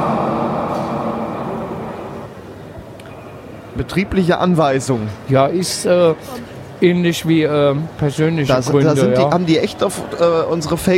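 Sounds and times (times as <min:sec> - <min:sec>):
regional express train arriving at platform: 0:00.0 - 0:03.8
speech: 0:03.8 - 0:10.9.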